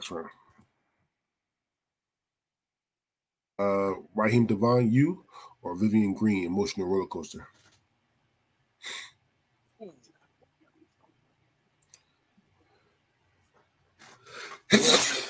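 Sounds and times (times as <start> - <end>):
speech: 0.0 - 0.4, 3.6 - 7.6, 14.7 - 15.2
small breathy puff: 14.0 - 15.2
loud sneeze with breathy buildup: 14.7 - 15.2.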